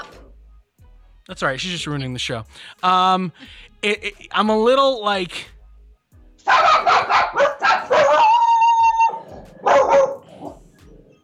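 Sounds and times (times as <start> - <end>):
speech: 1.3 - 5.6
dogs barking at people passing in the neighbourhood: 6.4 - 11.1
dog howl-like whine: 7.8 - 10.6.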